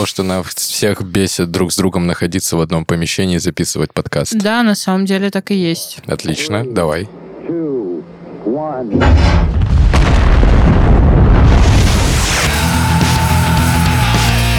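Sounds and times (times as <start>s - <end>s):
speech: 0.0s - 9.6s
explosion bombing sound effect with deep rumbling booms: 9.0s - 13.5s
roaring crackling bombardment: 9.0s - 14.4s.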